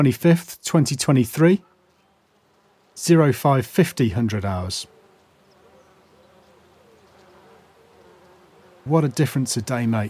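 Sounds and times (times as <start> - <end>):
speech: 0.0 - 1.7, 3.0 - 4.9, 8.8 - 10.0
bees buzzing: 0.0 - 10.0
faint bird chirps: 1.6 - 2.4, 5.2 - 8.6.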